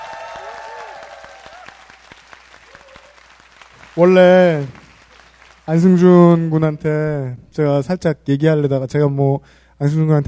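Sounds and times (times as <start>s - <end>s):
audience applauding a band: 0.0s - 6.6s
speech: 4.0s - 4.8s, 5.7s - 10.2s.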